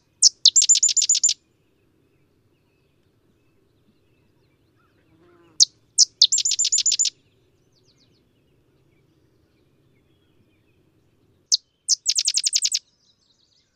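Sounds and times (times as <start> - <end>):
sedge wren singing dry rapid rattle: 0.0 - 1.4, 5.6 - 7.2, 11.5 - 12.8.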